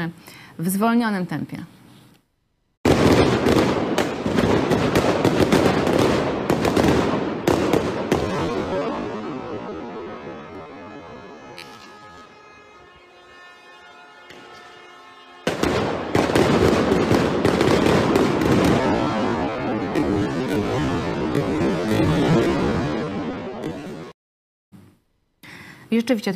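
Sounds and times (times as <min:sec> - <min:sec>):
speech: 0:00.0 - 0:01.8, 0:26.0 - 0:26.3
stun grenades thrown by police exploding near protesters: 0:02.9 - 0:13.0, 0:15.5 - 0:23.7.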